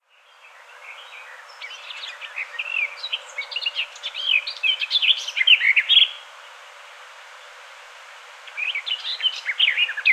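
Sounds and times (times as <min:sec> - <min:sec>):
Sylvia borin garden warbler singing a rapid warble of mellow notes: 0:00.0 - 0:06.2, 0:08.5 - 0:10.1.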